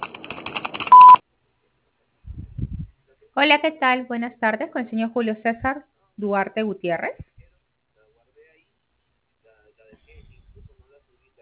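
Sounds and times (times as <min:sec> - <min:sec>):
telephone message tone beep: 0:00.9 - 0:01.2
faint low rumble: 0:02.2 - 0:03.0, 0:07.2 - 0:07.6, 0:10.0 - 0:11.1
speech: 0:03.4 - 0:07.3.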